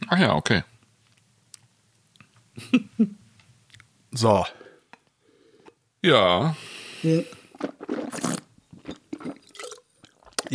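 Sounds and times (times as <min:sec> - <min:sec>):
speech: 0:00.1 - 0:00.7, 0:02.6 - 0:03.2, 0:04.2 - 0:04.6, 0:06.0 - 0:08.3
wet chewing with lip smacking while eating: 0:07.5 - 0:10.5.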